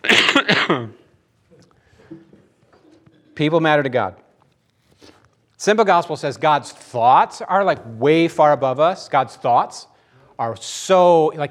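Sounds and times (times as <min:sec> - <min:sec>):
rough throaty cough: 0:00.0 - 0:01.1
speech: 0:00.4 - 0:01.0, 0:03.4 - 0:04.2, 0:05.6 - 0:11.5.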